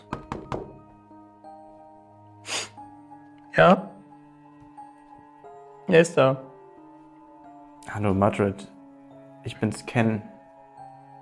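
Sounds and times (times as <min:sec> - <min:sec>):
soft knocks on a door: 0:00.1 - 0:00.8
speech: 0:03.6 - 0:03.9, 0:05.9 - 0:06.5, 0:07.9 - 0:08.8, 0:09.4 - 0:10.3.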